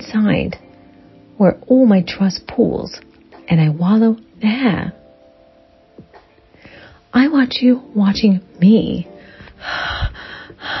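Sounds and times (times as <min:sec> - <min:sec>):
speech: 0:00.1 - 0:00.7, 0:01.4 - 0:05.0, 0:07.1 - 0:10.7
deep heavy breathing: 0:09.2 - 0:10.7.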